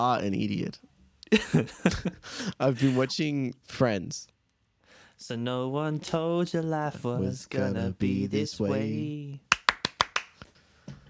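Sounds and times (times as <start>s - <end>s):
speech: 0.0s - 4.3s, 5.2s - 9.5s
hand claps: 9.5s - 10.6s.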